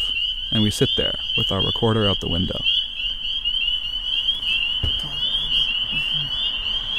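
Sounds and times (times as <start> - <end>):
spring peeper frogs peeping in a wetland chorus: 0.0 - 6.9
speech: 0.5 - 2.8
low thump: 4.8 - 5.2.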